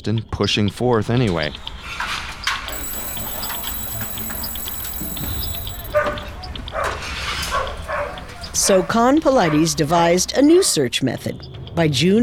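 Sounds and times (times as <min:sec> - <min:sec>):
speech: 0:00.0 - 0:02.1, 0:08.6 - 0:12.2
steady noisy background: 0:02.7 - 0:06.2
dogs barking: 0:06.8 - 0:08.3.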